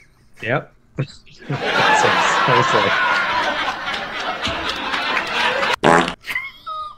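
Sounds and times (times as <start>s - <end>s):
speech: 0.4s - 3.6s
people chattering: 1.4s - 5.8s
snickering laughter: 1.4s - 6.5s
loud drawn-out fart: 5.8s - 6.2s.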